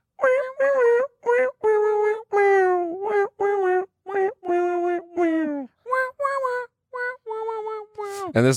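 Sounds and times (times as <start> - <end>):
person imitating dying duck-like honks of a song: 0.2 - 8.3
speech: 8.4 - 8.5.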